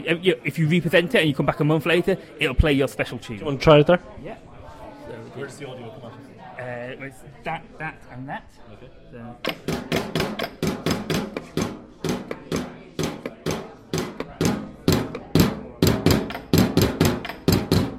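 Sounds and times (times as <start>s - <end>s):
speech: 0.0s - 4.5s, 5.3s - 10.8s
solenoids tapping on a biscuit tin, a wooden box and a tabletop: 9.4s - 17.9s.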